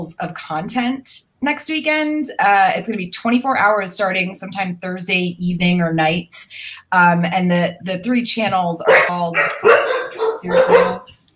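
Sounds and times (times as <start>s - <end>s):
speech: 0.0s - 11.0s
several dogs barking: 8.9s - 11.3s.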